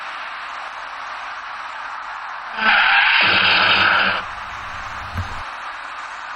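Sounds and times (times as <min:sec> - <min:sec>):
braking car tires screeching: 0:02.5 - 0:05.5
rumbling scrape of car collision: 0:03.3 - 0:05.4
short dull thud: 0:04.2 - 0:05.4.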